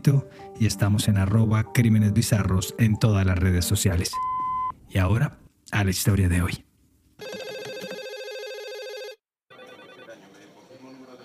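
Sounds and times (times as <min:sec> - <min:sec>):
speech: 0:00.0 - 0:06.7
electronic telephone ringing at a medical emergency switchboard: 0:07.2 - 0:10.2.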